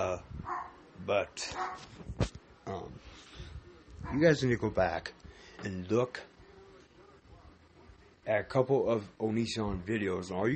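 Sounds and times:
dogs barking and yipping: 0:00.5 - 0:00.8, 0:01.5 - 0:01.9
speech: 0:01.1 - 0:03.3, 0:04.0 - 0:06.3, 0:08.2 - 0:10.5.

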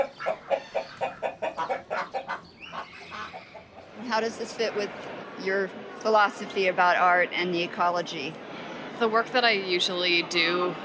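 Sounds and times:
chickens clucking: 0:00.0 - 0:04.1
speech: 0:04.1 - 0:08.4, 0:09.0 - 0:10.8.

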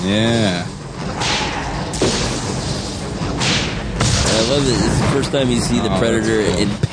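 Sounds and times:
speech: 0:00.0 - 0:01.3, 0:04.5 - 0:06.9
explosive arrows blowing up in film action: 0:01.0 - 0:05.6.

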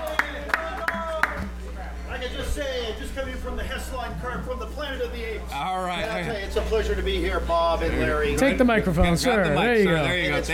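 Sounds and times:
sparse round of slow clapping: 0:00.0 - 0:01.6
steady hum: 0:00.0 - 0:10.5
speech: 0:03.8 - 0:10.5.

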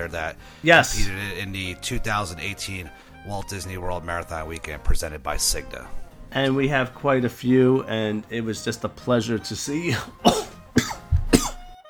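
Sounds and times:
speech: 0:00.0 - 0:10.5
man with a 102-degree fever coughing: 0:09.9 - 0:11.7.

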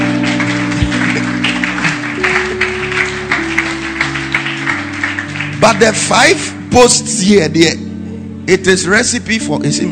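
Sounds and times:
audience applause: 0:00.0 - 0:06.5
held keyboard or organ tones: 0:00.0 - 0:06.8
speech: 0:05.6 - 0:07.9, 0:08.5 - 0:09.9.

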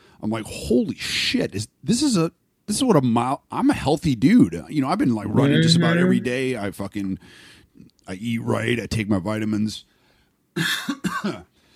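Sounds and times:
speech: 0:00.2 - 0:09.9, 0:10.6 - 0:11.5
harsh raspy coughs with a throaty rattle: 0:10.6 - 0:11.5.

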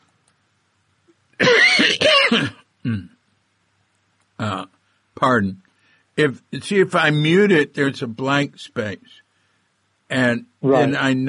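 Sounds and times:
person coughing: 0:01.4 - 0:03.1
person clearing throat: 0:01.4 - 0:03.2
speech: 0:05.2 - 0:09.2, 0:10.1 - 0:11.2.

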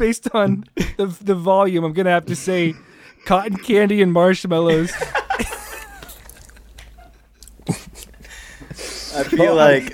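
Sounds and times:
speech: 0:00.0 - 0:05.6, 0:09.2 - 0:09.9
laughter: 0:04.7 - 0:08.3
chewing and biting close to the microphone: 0:07.4 - 0:08.2.

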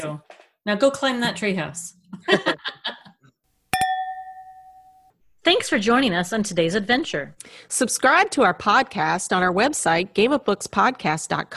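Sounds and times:
speech: 0:00.0 - 0:02.5, 0:05.6 - 0:11.5
laughter: 0:02.1 - 0:03.3
glasses clinking in a toast: 0:03.8 - 0:05.1.

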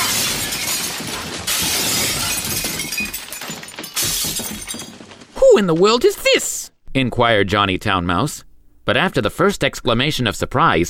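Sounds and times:
glass shattering: 0:00.0 - 0:05.9
speech: 0:05.6 - 0:10.8.

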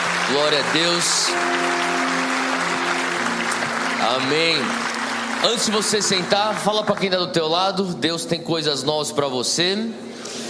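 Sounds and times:
church congregation applauding: 0:00.0 - 0:07.8
sustained musical tones: 0:00.1 - 0:07.7
speech: 0:00.3 - 0:02.4, 0:04.0 - 0:04.8, 0:05.4 - 0:10.4.

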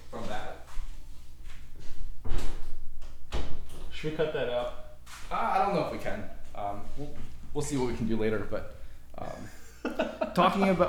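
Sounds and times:
door pushed shut with a solid thud: 0:02.2 - 0:03.9
speech: 0:04.0 - 0:08.8, 0:10.4 - 0:10.8
laughter: 0:09.3 - 0:10.5.

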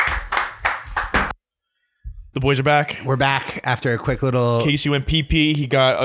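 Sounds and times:
people clapping hands after a performance: 0:00.0 - 0:01.4
speech: 0:02.4 - 0:06.0.

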